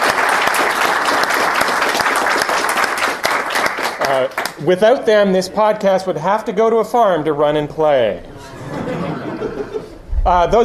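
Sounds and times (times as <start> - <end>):
large live audience applauding: 0.0 - 4.6
speech: 4.1 - 8.3, 10.2 - 10.6
laughter: 8.3 - 10.1.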